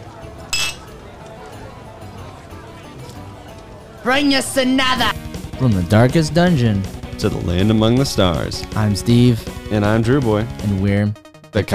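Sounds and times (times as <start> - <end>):
low murmur of noise: 0.0 - 5.1
glasses clinking in a toast: 0.6 - 0.9
speech: 4.0 - 11.7.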